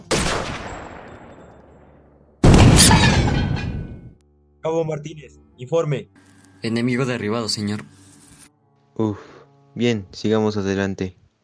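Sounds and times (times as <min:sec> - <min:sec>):
grenade explosion in a firefight: 0:00.0 - 0:04.0
speech: 0:04.6 - 0:08.0, 0:09.0 - 0:11.2.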